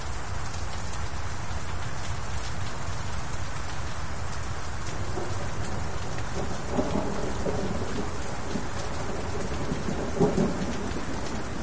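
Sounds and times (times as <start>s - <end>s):
steady rain falling on a castle: 0.0s - 11.6s
thunder rumbling: 4.9s - 11.6s.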